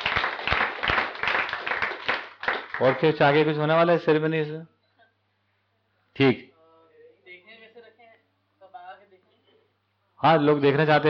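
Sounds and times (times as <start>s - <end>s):
many hands clapping in applause at a camp gathering: 0.0s - 3.5s
speech: 2.8s - 4.7s, 6.2s - 6.5s, 10.2s - 11.0s.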